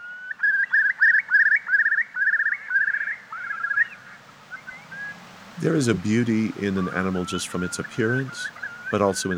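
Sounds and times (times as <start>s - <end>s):
Eurasian curlew song: 0.0s - 9.3s
speech: 5.6s - 9.3s.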